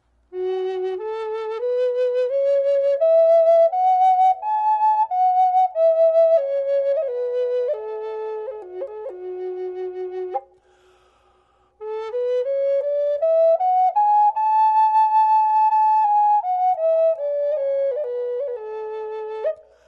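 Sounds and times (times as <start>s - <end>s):
redwood flute in F sharp: 0.0s - 10.8s, 11.6s - 19.8s.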